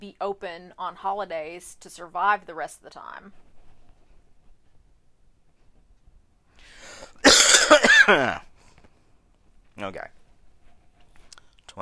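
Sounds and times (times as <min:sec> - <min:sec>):
speech: 0:00.0 - 0:03.5, 0:08.1 - 0:08.5, 0:09.8 - 0:10.2
person coughing: 0:07.2 - 0:08.5.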